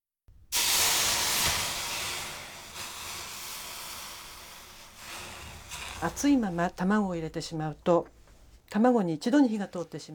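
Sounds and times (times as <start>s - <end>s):
hot pot with cooking oil hissing on water-soaked dish towel: 0.4s - 7.6s
person talking: 6.0s - 10.1s.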